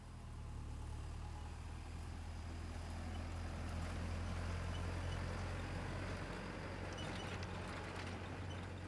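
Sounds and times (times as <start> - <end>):
truck passing on the right: 0.1 - 8.8.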